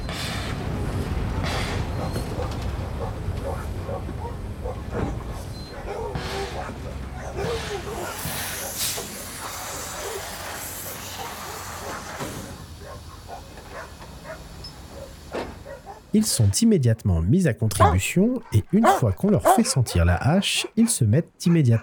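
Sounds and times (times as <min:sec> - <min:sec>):
steam train hissing: 0:00.0 - 0:02.3, 0:06.1 - 0:16.5
dogs barking: 0:01.6 - 0:16.5, 0:17.7 - 0:21.8
speech: 0:16.2 - 0:21.8.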